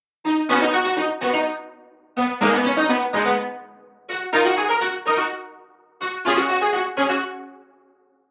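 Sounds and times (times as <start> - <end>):
hybrid standard funk music: 0.3 - 5.4, 6.0 - 7.5.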